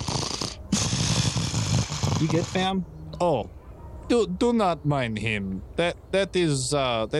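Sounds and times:
heavy rasping breathing: 0.0s - 2.8s
speech: 2.2s - 7.1s.

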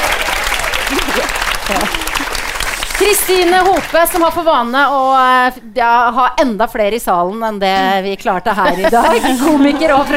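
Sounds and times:
loud applause from a live audience: 0.0s - 4.3s
laughter: 0.6s - 2.5s, 8.6s - 10.1s
speech: 1.7s - 2.1s, 3.0s - 10.1s.

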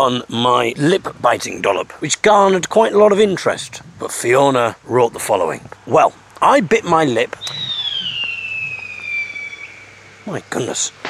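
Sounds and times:
speech: 0.0s - 7.6s, 10.3s - 11.0s
faint firework crackles: 0.0s - 11.0s
firework whistling in the afternoon: 7.4s - 11.0s.

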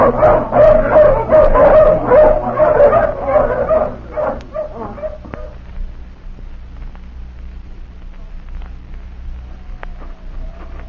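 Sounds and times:
pack of hounds barking and whimpering off the leash: 0.0s - 5.6s, 9.6s - 10.8s.

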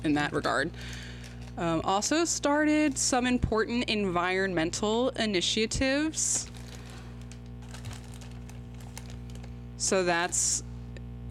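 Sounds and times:
speech: 0.0s - 6.6s, 9.8s - 10.7s
steady low hum: 0.0s - 11.2s
snack packaging rustling: 0.3s - 1.6s, 6.4s - 9.6s.

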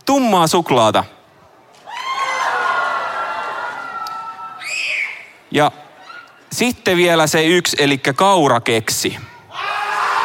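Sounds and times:
speech: 0.1s - 1.2s, 5.5s - 5.8s, 6.5s - 9.3s
audience shouting and cheering in a shout vote: 1.6s - 6.5s, 9.3s - 10.2s.

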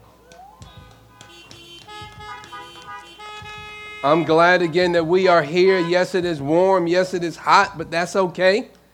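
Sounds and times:
car horns honking at an outdoor fellowship gathering: 0.4s - 6.4s
speech: 4.0s - 8.8s.

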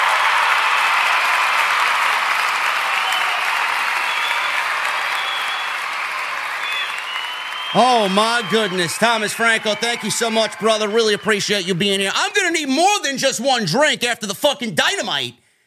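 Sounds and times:
crowd applauding: 0.0s - 12.6s
speech: 7.8s - 15.4s.

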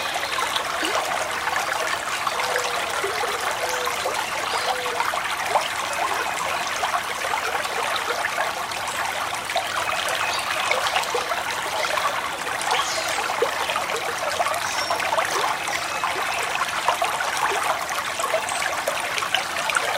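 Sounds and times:
woodland creek flowing over rocks: 0.0s - 19.9s.

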